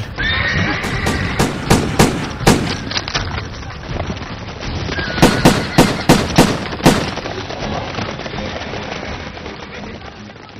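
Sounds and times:
horses neighing and whinnying: 0.0 - 1.7, 4.8 - 6.4
rapid bursts of gunshots: 0.8 - 3.1, 5.2 - 7.4.

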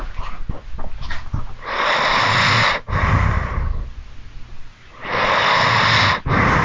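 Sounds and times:
person snoring while asleep: 1.6 - 3.9, 5.0 - 6.6.

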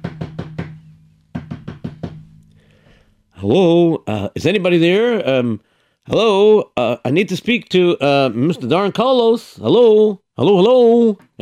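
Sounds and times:
firm knocks on a large resonant wooden door: 0.0 - 2.2
speech: 3.4 - 11.4.

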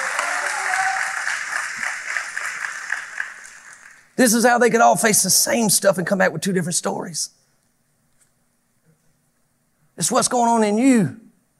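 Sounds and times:
crowd of people clapping hands in applause: 0.0 - 4.2
speech: 4.2 - 7.4, 10.0 - 11.2.

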